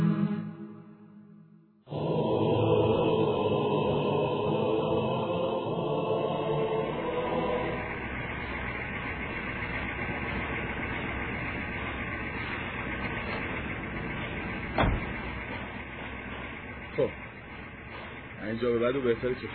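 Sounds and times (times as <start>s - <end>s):
car engine rumbling: 2.1s - 19.5s
car door closing thump: 14.7s - 15.2s
speech: 18.6s - 19.5s.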